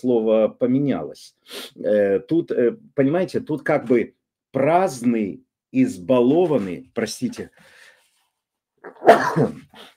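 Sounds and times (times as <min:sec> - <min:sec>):
speech: 0:00.0 - 0:07.8, 0:08.8 - 0:09.9
person sneezing: 0:08.9 - 0:09.9.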